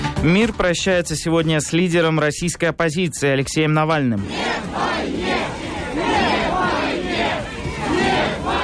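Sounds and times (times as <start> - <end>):
speech: 0.2 - 4.8
dense crowd of mourners shouting and chanting at a cemetery: 3.7 - 8.6.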